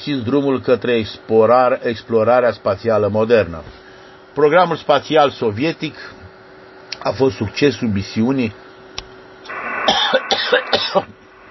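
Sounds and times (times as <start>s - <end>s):
speech: 0.0s - 3.8s, 4.4s - 6.2s, 7.0s - 8.6s, 10.4s - 11.1s
person coughing harshly: 9.9s - 11.2s
throat clearing: 9.9s - 11.2s.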